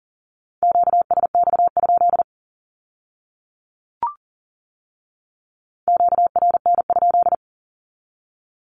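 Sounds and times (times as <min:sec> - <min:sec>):
fast Morse code Q-code on a mid-pitched tone at 40 words per minute: 0:00.6 - 0:02.2, 0:05.9 - 0:07.4.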